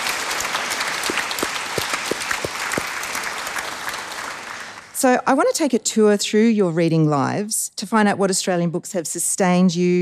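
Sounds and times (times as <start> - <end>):
audience clapping: 0.0 - 5.0
speech: 5.0 - 9.9.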